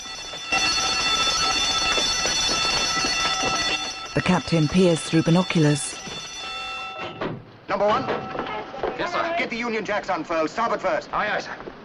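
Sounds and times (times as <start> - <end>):
alarm bell ringing aboard a ship as crew go to action stations: 0.0 - 7.2
speech: 4.2 - 5.9, 7.8 - 8.2, 9.4 - 11.6.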